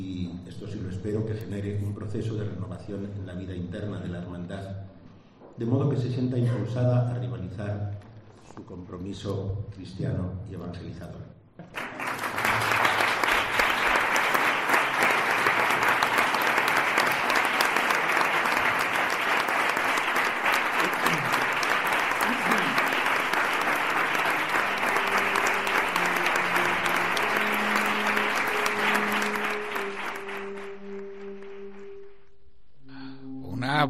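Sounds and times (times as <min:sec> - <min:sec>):
speech: 0:00.0 - 0:05.0, 0:05.6 - 0:11.8
audience applauding in a conference room celebrating an announcement: 0:11.6 - 0:32.2.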